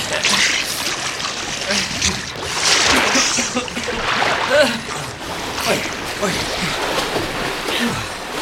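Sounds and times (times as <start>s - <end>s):
people swimming through water: 0.0s - 8.4s.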